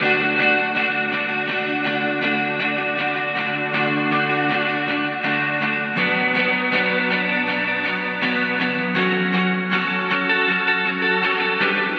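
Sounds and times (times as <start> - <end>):
dream pop guitar chords in D: 0.0 - 11.9.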